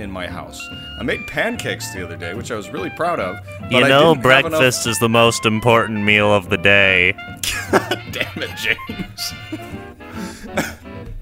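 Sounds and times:
speech: 0.0s - 9.8s
laughter: 6.4s - 10.8s
sharp cough: 7.4s - 9.4s, 10.6s - 10.8s.

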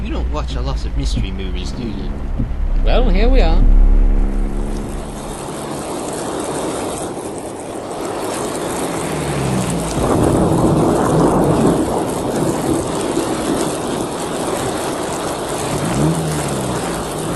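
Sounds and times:
heavy rain: 0.0s - 17.3s
low thunder rumbling: 0.0s - 17.3s
speech: 0.4s - 4.0s.

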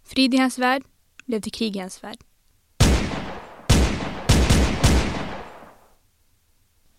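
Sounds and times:
speech: 0.2s - 2.3s
loud pistol shots with tail: 2.8s - 5.8s.

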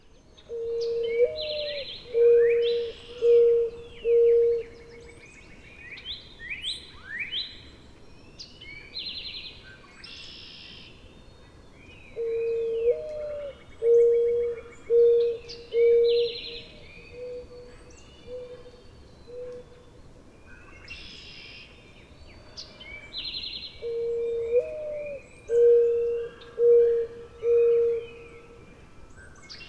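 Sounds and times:
mourning dove cooing: 0.5s - 5.0s, 12.2s - 17.6s, 23.8s - 28.3s.

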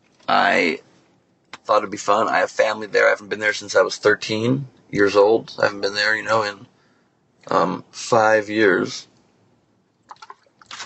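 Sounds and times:
speech: 0.3s - 0.9s, 1.7s - 6.7s, 7.4s - 9.1s
short breathy exhale after drinking: 6.7s - 7.2s
sipping and swallowing water: 10.1s - 10.8s.

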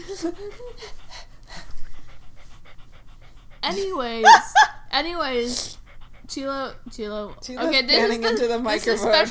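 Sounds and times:
dog panting: 0.0s - 9.2s
speech: 0.1s - 1.2s, 3.6s - 9.2s.

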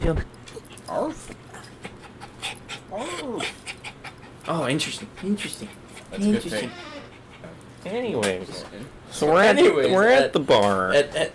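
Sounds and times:
speech: 0.1s - 1.4s, 4.5s - 6.9s, 7.8s - 11.3s
dog whining: 0.5s - 4.4s, 5.4s - 7.7s
dog panting: 0.6s - 8.0s.

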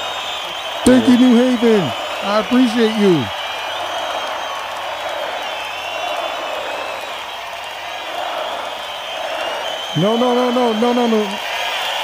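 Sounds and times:
large audience clapping and cheering: 0.0s - 12.0s
speech: 0.8s - 3.4s, 10.0s - 11.5s.

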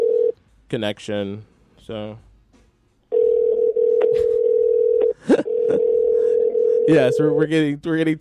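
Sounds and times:
speech: 0.7s - 2.3s, 6.9s - 8.1s
telephone dial tone: 3.1s - 7.4s.

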